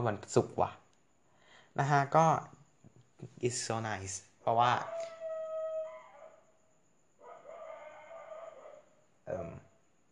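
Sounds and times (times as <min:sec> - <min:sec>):
speech: 0:00.0 - 0:00.8, 0:01.8 - 0:02.6, 0:03.2 - 0:05.1, 0:09.3 - 0:09.6
dog howling in long wavering tones: 0:04.8 - 0:06.4, 0:07.2 - 0:08.9
dog short sharp bark: 0:07.2 - 0:08.9.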